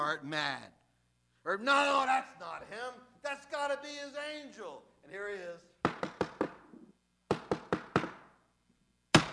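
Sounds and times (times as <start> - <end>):
speech: 0.0 - 0.8, 1.4 - 6.0
knocking on a wooden door: 5.8 - 6.6, 7.3 - 8.2.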